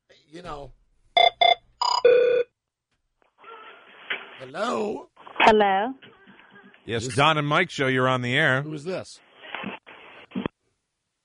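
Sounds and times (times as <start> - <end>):
speech: 0.3 - 0.8, 4.4 - 6.1, 6.8 - 9.2
hotline telephone ringing in electronic trill bursts: 1.2 - 2.5.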